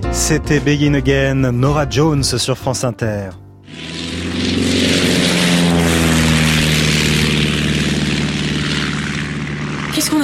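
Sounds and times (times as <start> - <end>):
speech: 0.2 - 4.0
propeller airplane engine droning: 3.7 - 10.2.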